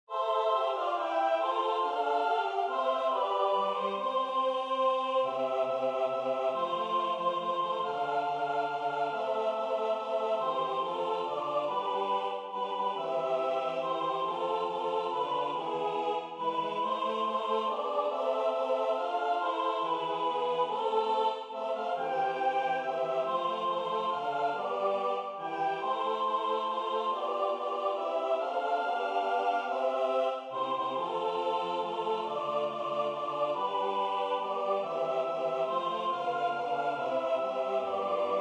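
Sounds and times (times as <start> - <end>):
minuet played tutti by full ensemble: 0.2 - 38.4.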